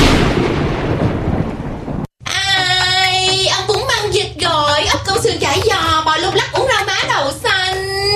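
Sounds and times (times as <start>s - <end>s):
loud dense roar of thunder and storm noise: 0.0s - 2.1s
voices speaking close and clear: 2.3s - 8.1s.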